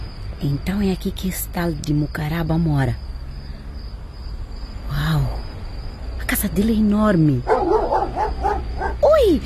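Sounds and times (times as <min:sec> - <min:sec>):
speech: 0:00.4 - 0:03.1, 0:06.4 - 0:07.6, 0:09.2 - 0:09.4
dog barking: 0:07.4 - 0:09.1.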